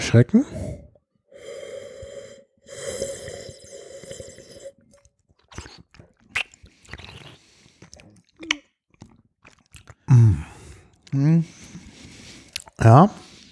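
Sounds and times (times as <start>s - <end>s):
speech: 0.1s - 0.6s, 12.8s - 13.2s
quiet breathing: 0.3s - 4.8s, 10.2s - 12.6s, 13.2s - 13.5s
person slurping wine during tasting: 1.4s - 8.2s
lip smacks while tasting wine: 5.0s - 10.0s, 12.5s - 12.8s.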